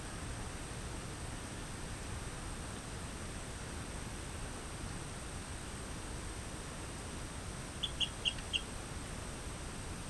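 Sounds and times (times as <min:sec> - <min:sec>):
low hiss: 0:00.0 - 0:10.0
Rio Grande chirping frog Eleutherodactylus cystignathoides chirping: 0:07.8 - 0:08.7.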